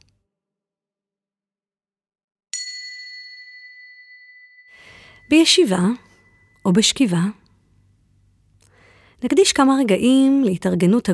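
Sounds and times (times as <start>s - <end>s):
meditation bell chime: 2.6s - 6.8s
speech: 5.3s - 7.4s, 9.2s - 11.1s.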